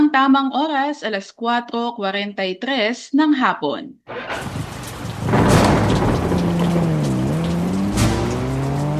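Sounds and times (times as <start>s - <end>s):
speech: 0.1s - 4.6s
heavy rain pouring: 4.1s - 8.9s
low droning engine hum: 6.0s - 8.9s.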